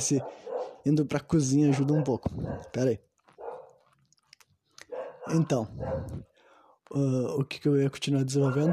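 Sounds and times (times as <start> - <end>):
household pet dogs barking: 0.0 - 0.9, 1.6 - 2.8, 3.4 - 3.8, 4.8 - 6.2, 8.4 - 8.7
speech: 0.0 - 3.1, 5.3 - 6.3, 6.9 - 8.7.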